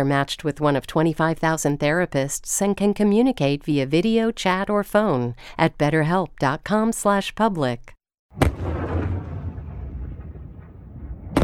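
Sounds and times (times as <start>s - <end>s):
speech: 0.0s - 8.8s
Chinese missiles fired into the Taiwan Strait: 8.4s - 11.4s
low rumbling roar of missiles fired into the sea: 8.4s - 11.4s.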